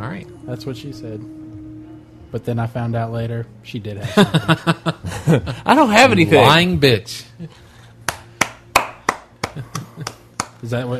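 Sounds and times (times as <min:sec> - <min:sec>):
speech: 0:00.2 - 0:01.4, 0:02.3 - 0:07.6, 0:10.6 - 0:10.9
laughter: 0:04.0 - 0:05.9, 0:09.4 - 0:10.3
sharp hand claps: 0:08.0 - 0:10.8.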